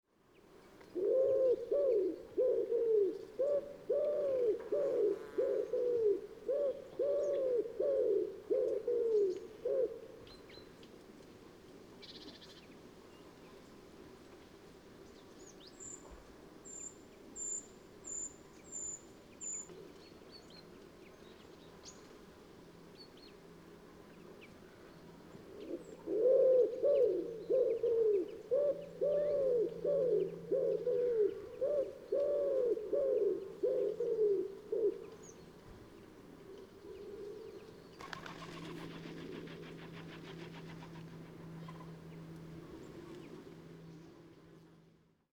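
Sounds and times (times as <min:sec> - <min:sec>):
collared dove calling: 0:01.0 - 0:10.4, 0:25.4 - 0:35.5, 0:36.4 - 0:43.4.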